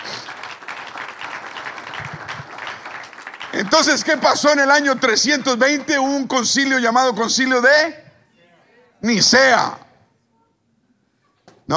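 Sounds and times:
crowd applauding: 0.0s - 6.3s
speech: 3.7s - 8.0s, 9.0s - 9.8s.

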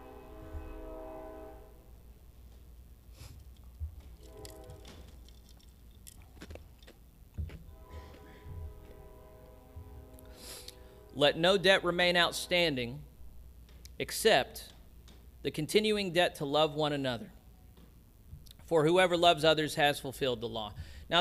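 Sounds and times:
train horn: 0.0s - 2.0s, 4.2s - 5.2s, 7.6s - 12.9s
passing train rumbling: 0.0s - 2.2s, 7.6s - 13.2s
speech: 11.2s - 13.1s, 14.0s - 14.7s, 15.4s - 17.4s, 18.7s - 21.1s.

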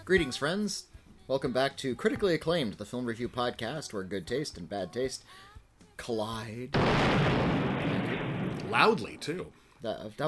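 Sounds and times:
speech: 0.1s - 7.6s, 8.2s - 10.2s
loud explosion outdoors: 6.8s - 9.5s.

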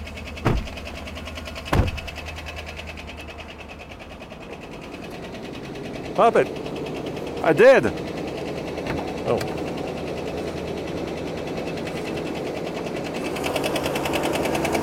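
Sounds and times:
running engine ticking like a knocking rod: 0.0s - 14.8s
sharp clunks: 0.4s - 1.0s, 1.7s - 2.2s
speech: 6.2s - 6.7s, 7.4s - 8.0s, 8.9s - 9.6s.

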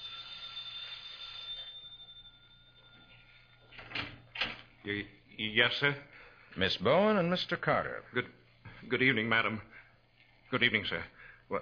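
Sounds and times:
doorbell ringing with a bright lingering tone: 0.0s - 4.5s
speech: 4.8s - 9.8s, 10.5s - 11.6s.

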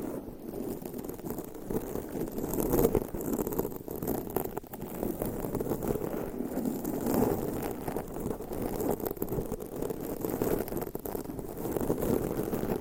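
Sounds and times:
long nails scratching across a microphone: 0.0s - 12.8s.

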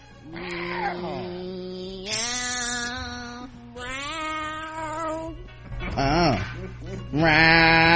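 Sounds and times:
people imitating cat meows: 0.3s - 5.2s, 7.2s - 7.9s.

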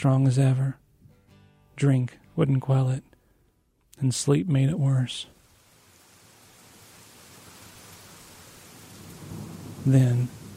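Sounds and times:
speech: 0.0s - 0.8s, 1.8s - 3.1s, 4.0s - 5.4s, 9.8s - 10.4s
heavy rain: 5.0s - 10.5s
low thunder rumble: 7.6s - 10.5s.

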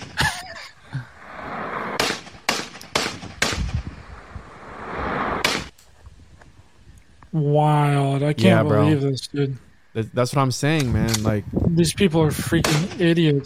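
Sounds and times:
steady outdoor noise: 0.0s - 13.4s
gunshots from a gun fired by a man: 1.9s - 3.8s, 5.2s - 5.7s, 12.6s - 13.2s
speech: 7.3s - 13.4s.

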